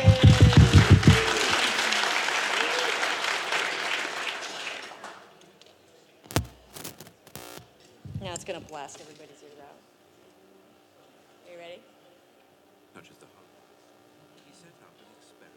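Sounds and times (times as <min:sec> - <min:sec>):
scattered claps: 0:00.0 - 0:05.3, 0:06.3 - 0:09.1
audience clapping at a live talk: 0:00.0 - 0:05.4
speech: 0:08.8 - 0:09.9.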